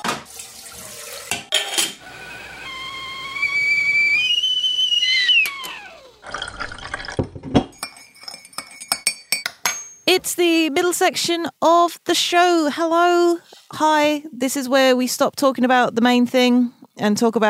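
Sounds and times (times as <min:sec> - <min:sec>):
water pouring for tea: 0:00.0 - 0:01.4, 0:06.0 - 0:07.5
kettle whistling with a multi-toned shriek: 0:02.0 - 0:07.0
cups and crockery clinking as tea is made: 0:06.2 - 0:10.0
speech: 0:10.2 - 0:17.4.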